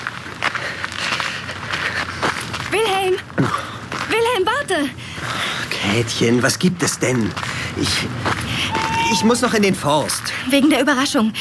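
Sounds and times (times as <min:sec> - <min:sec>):
footsteps crunching over a rough surface: 0:00.0 - 0:04.8, 0:06.6 - 0:10.4
speech: 0:02.9 - 0:03.6, 0:05.8 - 0:11.3.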